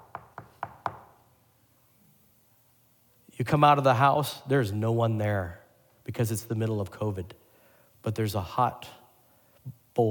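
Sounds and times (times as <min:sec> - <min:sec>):
knocking on a door: 0:00.0 - 0:01.1
speech: 0:03.4 - 0:07.4, 0:08.0 - 0:09.0, 0:09.6 - 0:10.0.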